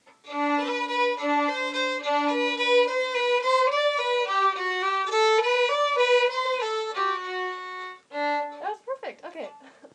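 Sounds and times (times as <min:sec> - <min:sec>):
fiddle with echo: 0:00.3 - 0:08.8.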